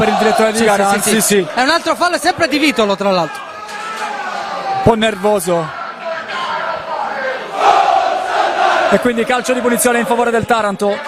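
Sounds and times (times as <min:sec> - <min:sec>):
large stadium crowd of visiting football supporters chanting during a match: 0:00.0 - 0:02.8, 0:05.7 - 0:11.0
speech: 0:00.0 - 0:03.5, 0:04.8 - 0:05.8, 0:08.9 - 0:11.0.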